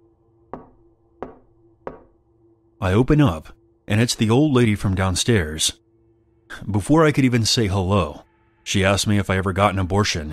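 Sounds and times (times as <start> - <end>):
knocks on a door: 0.5 - 2.1
speech: 2.8 - 5.8, 6.5 - 10.3.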